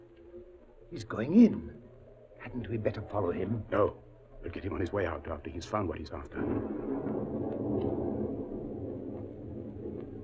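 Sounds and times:
speech: 0:00.9 - 0:01.8, 0:02.4 - 0:07.4
distant thunder rumbling before a storm: 0:06.1 - 0:10.2.

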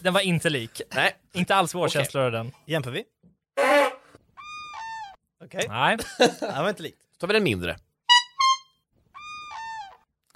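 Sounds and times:
speech: 0:00.0 - 0:03.9, 0:05.4 - 0:07.9
small handheld horn honking with a reedy blast: 0:08.1 - 0:09.7.

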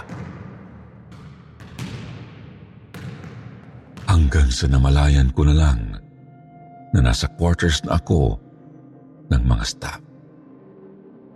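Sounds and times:
ball bouncing: 0:00.0 - 0:04.1
speech: 0:04.3 - 0:06.0, 0:06.9 - 0:08.4, 0:09.3 - 0:10.0.

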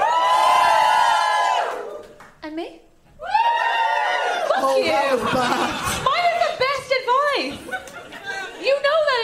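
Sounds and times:
audience cheering and whooping: 0:00.0 - 0:02.2, 0:03.2 - 0:05.5
laughter: 0:04.6 - 0:09.2.

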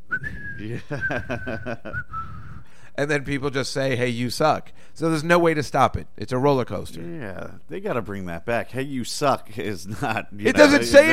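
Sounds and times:
person whistling a chant tune: 0:00.0 - 0:02.7
speech: 0:00.6 - 0:02.2, 0:03.0 - 0:11.1
laughter: 0:00.7 - 0:02.0, 0:10.5 - 0:11.1.

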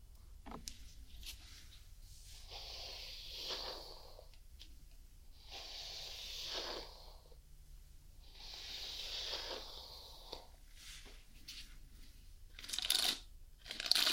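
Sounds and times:
low steady hum: 0:00.0 - 0:13.8
brush strokes on a cat: 0:00.9 - 0:04.3, 0:05.4 - 0:07.3, 0:08.3 - 0:12.2.

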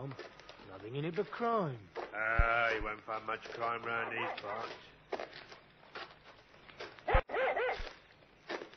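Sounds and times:
footsteps: 0:00.0 - 0:08.7
speech: 0:00.1 - 0:05.5
dog barking excitedly: 0:07.1 - 0:07.9.

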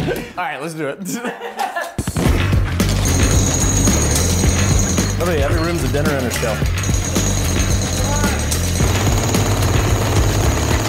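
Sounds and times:
speech: 0:00.4 - 0:01.7, 0:05.2 - 0:07.0
laughter: 0:01.0 - 0:02.2
jackhammer pounding: 0:02.8 - 0:05.5, 0:06.7 - 0:10.8.

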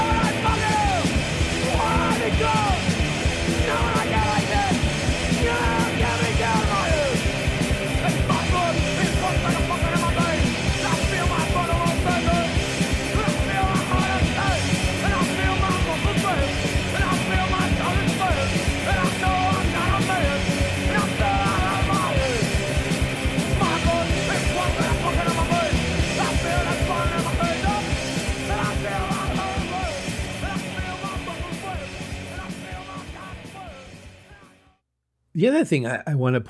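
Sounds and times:
dense distorted punk rock guitars: 0:00.0 - 0:34.6
driving punk rock drums: 0:00.0 - 0:34.6
shouted yelled punk rock vocals: 0:00.0 - 0:34.7
speech: 0:35.4 - 0:36.4.

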